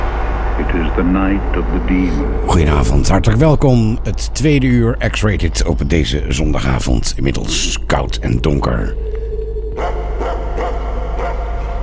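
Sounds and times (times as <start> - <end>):
constant low hum: 0.0 - 11.8
speech: 0.7 - 9.2
dog barking: 9.8 - 11.8.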